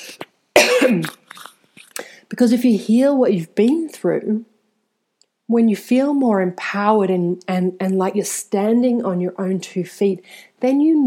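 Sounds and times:
harsh cough: 0:00.0 - 0:02.0
speech: 0:02.4 - 0:04.5, 0:05.5 - 0:11.0.

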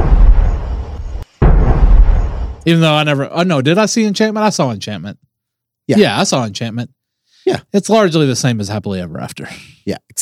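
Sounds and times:
cannon blasts: 0:00.0 - 0:02.7
speech: 0:02.6 - 0:05.3, 0:05.9 - 0:10.2.

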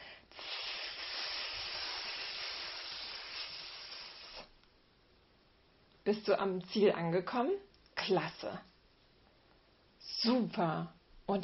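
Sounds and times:
person hissing like a snake: 0:00.0 - 0:04.6
speech: 0:06.1 - 0:08.7, 0:10.2 - 0:11.4.

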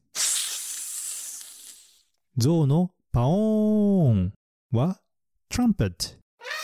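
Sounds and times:
snake hissing: 0:00.0 - 0:02.1
speech: 0:02.4 - 0:06.2.

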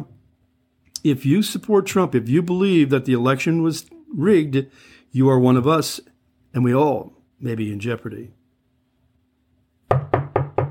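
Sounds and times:
speech: 0:01.0 - 0:08.4
firm knocks on a door: 0:09.9 - 0:10.6.

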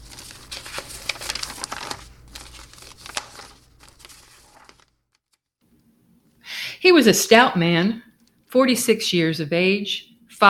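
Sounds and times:
two-sided paper form crinkling and rustling at a clinic: 0:00.0 - 0:05.5
speech: 0:06.8 - 0:10.4.

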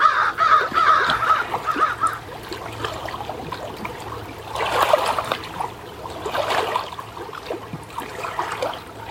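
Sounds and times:
crows cawing outdoors: 0:00.0 - 0:02.3
soft water trickle: 0:00.0 - 0:09.1.

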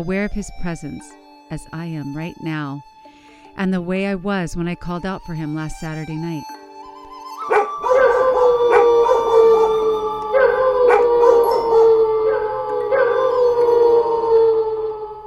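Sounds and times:
speech: 0:00.0 - 0:03.0, 0:03.6 - 0:06.6
dogs howling together in long wavering tones: 0:07.4 - 0:15.2.

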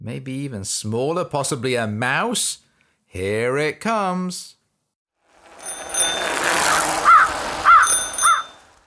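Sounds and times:
speech: 0:00.0 - 0:04.6
faint high metallic tings: 0:05.6 - 0:06.9, 0:07.7 - 0:08.7
crow cawing: 0:06.7 - 0:08.6.

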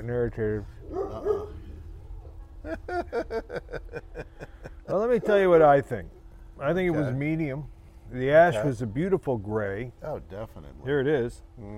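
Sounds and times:
speech: 0:00.0 - 0:01.6, 0:02.6 - 0:11.7
dog barking: 0:00.8 - 0:02.4
laughter: 0:02.4 - 0:05.6.

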